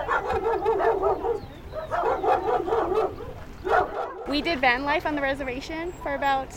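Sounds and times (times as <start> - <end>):
several excited dogs barking and whining in a van: 0.0 - 4.4
speech: 4.3 - 6.5.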